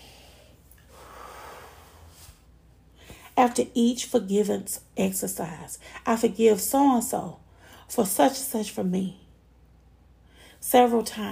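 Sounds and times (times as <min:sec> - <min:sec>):
deep breath drawn in a calm exercise: 0:00.0 - 0:03.3, 0:10.2 - 0:10.6
hiss: 0:00.0 - 0:11.3
speech: 0:03.4 - 0:09.2, 0:10.6 - 0:11.3.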